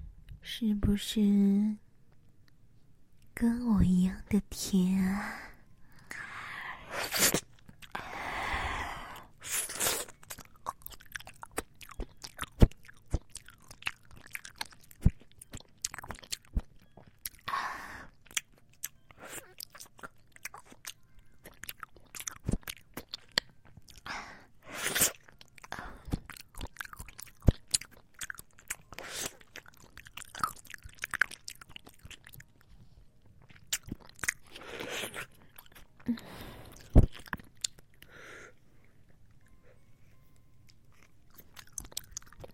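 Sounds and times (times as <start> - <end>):
speech: 0.5 - 1.8, 3.4 - 5.5, 7.0 - 7.4
chewing strawberry-flavoured jelly: 6.9 - 8.0, 9.1 - 39.7, 40.6 - 42.5.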